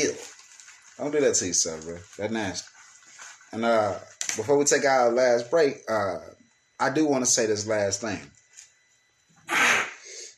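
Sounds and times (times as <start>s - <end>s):
speech: 1.0s - 2.8s, 3.5s - 8.4s
sharp loud sneeze: 9.5s - 10.0s.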